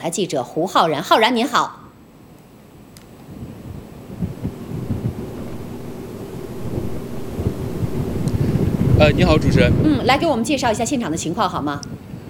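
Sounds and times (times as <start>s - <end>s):
speech: 0.0s - 1.8s, 9.0s - 12.0s
strong wind roaring at a typhoon's edge: 2.5s - 12.2s
rain hissing at a typhoon's edge: 3.0s - 11.3s.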